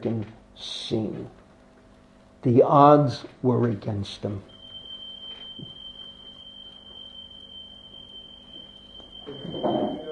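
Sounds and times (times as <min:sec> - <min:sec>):
speech: 0:00.0 - 0:01.4, 0:02.4 - 0:04.5
fire alarm sounding during a test: 0:04.4 - 0:10.0.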